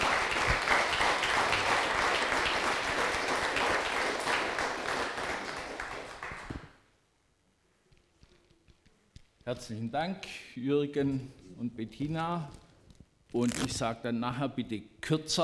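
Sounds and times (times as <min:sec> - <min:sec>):
audience applauding: 0:00.0 - 0:06.8
speech: 0:09.5 - 0:12.6, 0:13.3 - 0:15.4.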